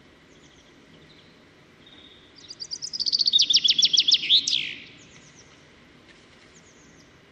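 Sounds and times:
common chaffinch Fringilla coelebs singing: 0:00.2 - 0:05.6.

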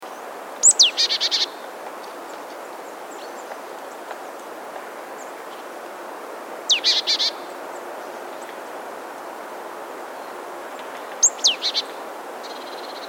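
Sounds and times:
background hiss: 0:00.0 - 0:13.0
Marsh tit Poecile palustris calls: 0:00.6 - 0:04.1, 0:06.7 - 0:07.7, 0:11.1 - 0:13.0.

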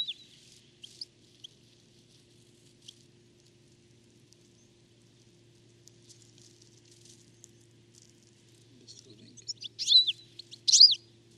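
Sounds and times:
faint low hum: 0:00.0 - 0:11.3
European goldfinch Carduelis carduelis giving ringing downward-sliding calls: 0:09.4 - 0:11.0.

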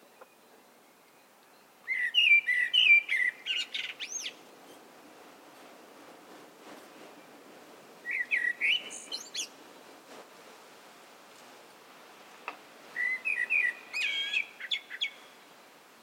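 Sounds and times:
common blackbird Turdus merula singing: 0:00.0 - 0:04.9, 0:08.0 - 0:09.6, 0:12.9 - 0:15.4.

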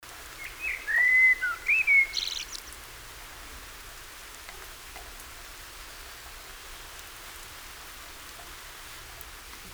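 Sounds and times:
common blackbird Turdus merula singing a mellow whistled warble: 0:00.4 - 0:02.7.

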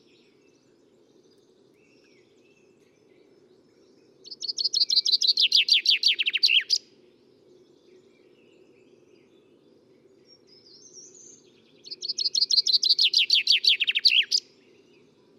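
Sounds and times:
common chaffinch Fringilla coelebs singing: 0:04.2 - 0:06.8, 0:10.3 - 0:15.0.

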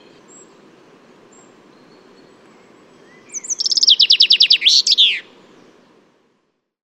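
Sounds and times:
soft background hiss: 0:00.0 - 0:06.8
common chaffinch Fringilla coelebs song: 0:01.3 - 0:05.3.

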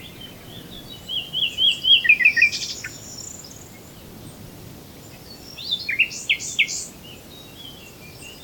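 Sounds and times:
common nightingale Luscinia megarhynchos singing whistled notes and sharp chirps: 0:00.0 - 0:04.4, 0:05.0 - 0:08.4.

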